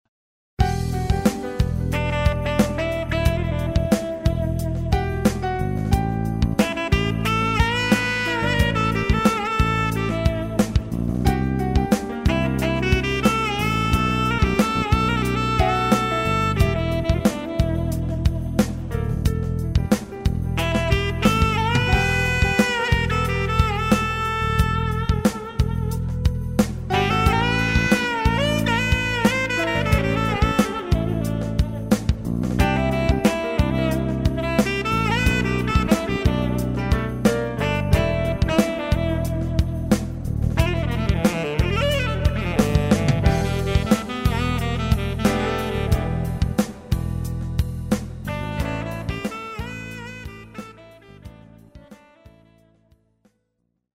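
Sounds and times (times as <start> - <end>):
saxophone: 0.6 - 53.1.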